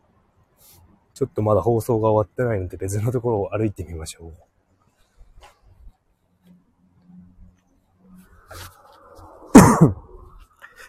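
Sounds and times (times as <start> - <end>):
faint rustle: 0.4 - 1.1, 4.4 - 9.5
speech: 1.2 - 4.6
harsh chesty asthma-like coughs after a cold from person walking outdoors: 9.5 - 10.1.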